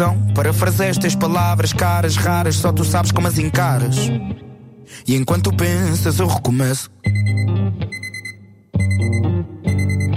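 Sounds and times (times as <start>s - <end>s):
speech: 0.0s - 8.0s
alarm clock ringing with electronic tones: 7.2s - 10.1s.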